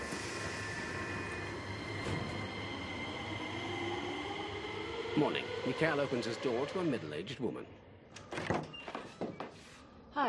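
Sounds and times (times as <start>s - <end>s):
subway train pulling out of the station: 0.0s - 8.1s
speech: 5.2s - 7.8s.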